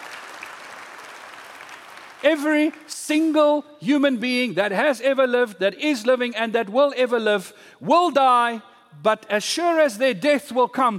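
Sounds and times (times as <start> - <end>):
crowd of people applauding: 0.0 - 2.9
speech: 2.2 - 10.9.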